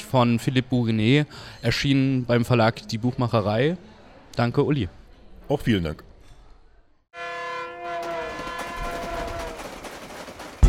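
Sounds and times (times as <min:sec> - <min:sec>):
speech: 0:00.1 - 0:06.1
train horn blaring: 0:07.1 - 0:09.8
rumble and clatter of a moving train: 0:08.0 - 0:10.6.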